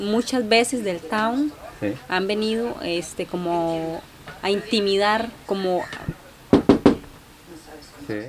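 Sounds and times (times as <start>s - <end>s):
speech: 0.0s - 6.1s, 8.1s - 8.2s
firm quick knocks on a door: 5.9s - 7.2s.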